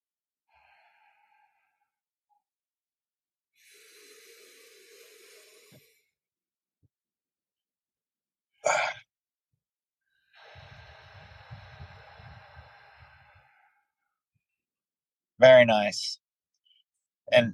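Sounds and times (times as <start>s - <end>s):
forceful breaths exhaled through an open mouth in a breathing exercise: 0.5s - 2.0s, 3.6s - 6.1s, 10.1s - 13.9s
speech: 15.4s - 16.2s, 17.3s - 17.5s.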